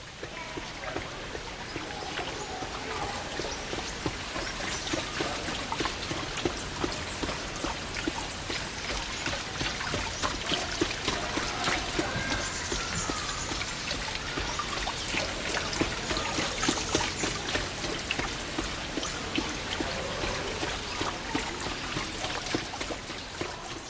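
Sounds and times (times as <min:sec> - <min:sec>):
water flowing and trickling: 0:00.0 - 0:23.8.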